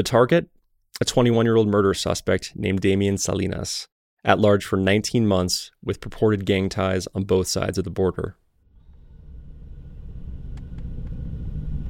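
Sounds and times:
speech: 0.0s - 8.4s
engine rumble inside a moving unmarked truck heard from the backseat: 8.7s - 11.8s.

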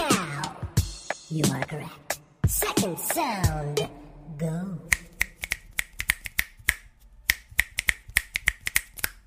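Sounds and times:
speech: 1.3s - 5.0s
fingers snapping: 4.9s - 9.2s.

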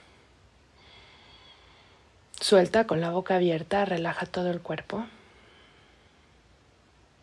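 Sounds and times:
long steady inhale through the nose: 0.2s - 2.2s, 5.2s - 6.5s
speech: 2.4s - 5.2s.

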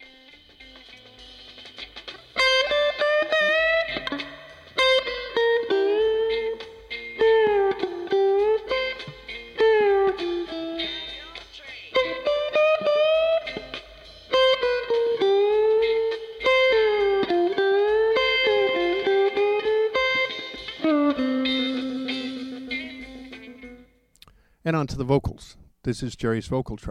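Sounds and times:
overdubbed lead guitar solo with studio echo-chamber reverb: 2.4s - 23.9s
speech: 24.8s - 26.8s.

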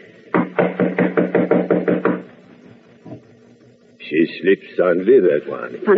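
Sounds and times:
loud knocking on a door: 0.3s - 2.3s
speech: 4.1s - 5.9s.

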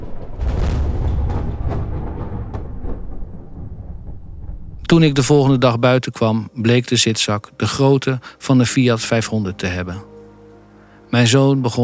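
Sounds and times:
thunder rumbling in a night storm: 0.0s - 6.0s
speech: 4.9s - 10.1s, 11.1s - 11.8s.

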